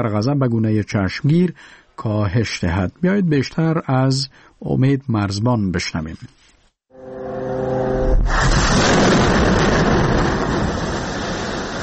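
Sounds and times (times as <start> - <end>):
speech: 0.0 - 6.4
high engine whine of Israeli fighter jets: 7.0 - 11.8
several explosions in the Gaza Strip at night: 8.0 - 11.8.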